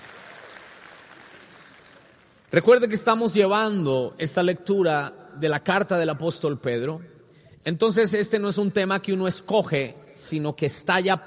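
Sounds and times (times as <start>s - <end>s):
audience applauding: 0.0s - 2.6s
speech: 2.5s - 11.2s.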